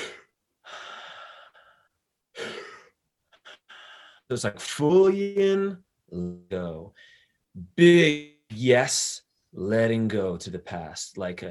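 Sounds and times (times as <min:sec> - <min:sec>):
deep forceful breathing close to the microphone: 0:00.0 - 0:04.3
speech: 0:04.3 - 0:11.4.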